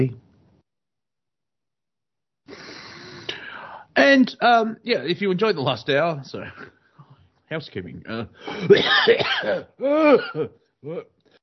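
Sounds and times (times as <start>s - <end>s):
speech: 0.0s - 0.2s, 4.0s - 6.8s, 7.5s - 11.1s
person coughing in hacking bursts: 8.4s - 11.0s
person clearing throat: 8.5s - 11.1s.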